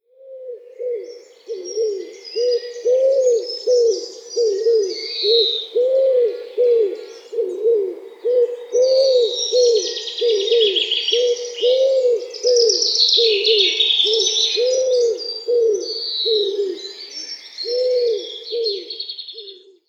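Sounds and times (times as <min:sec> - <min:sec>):
wood pigeon calling: 0:00.2 - 0:19.8.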